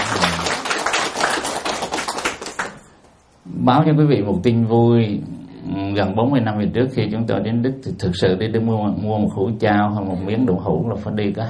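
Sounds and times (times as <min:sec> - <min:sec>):
audience round of applause: 0:00.0 - 0:02.8
speech: 0:03.6 - 0:11.4.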